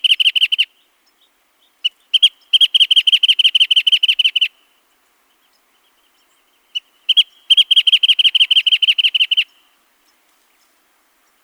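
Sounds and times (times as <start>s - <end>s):
wrentit song of introductory notes and a fast string of bright notes: 0.0s - 11.4s.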